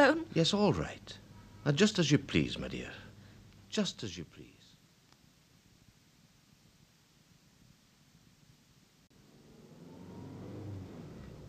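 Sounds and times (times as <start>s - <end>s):
speech: 0.0s - 3.0s, 3.7s - 4.6s
Lombard car engine running smoothly: 9.2s - 11.4s.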